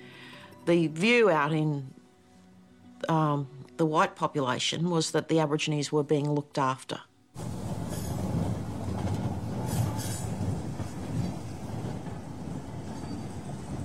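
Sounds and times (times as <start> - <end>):
speech: 0.7 - 2.0, 3.0 - 7.1
high train wheel squeals: 7.4 - 8.9, 9.5 - 13.8
train rumbling along rails carrying a passenger to Perth: 7.4 - 13.8.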